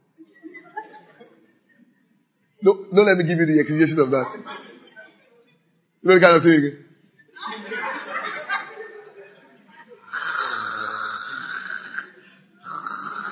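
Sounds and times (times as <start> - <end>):
laughter: 0.0 - 2.2, 7.2 - 10.2
speech: 2.6 - 4.6, 6.0 - 6.8
voice imitating loud snoring with rasping breaths: 10.1 - 13.3.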